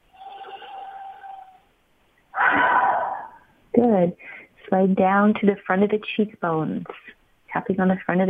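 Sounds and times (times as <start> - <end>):
big deep breath in and out during a guided tapping exercise: 2.4 - 3.5
speech: 3.8 - 8.2.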